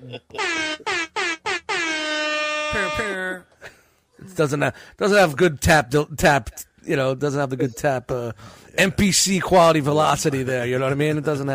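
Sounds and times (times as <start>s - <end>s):
speech: 0.0s - 1.0s, 4.3s - 11.5s
air horn sound effect blasts: 0.4s - 3.3s.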